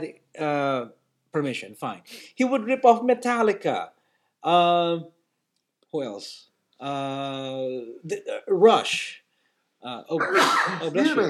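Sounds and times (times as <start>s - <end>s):
speech: 0.0s - 5.2s, 5.9s - 9.2s, 9.8s - 11.2s
person sneezing: 10.2s - 11.1s.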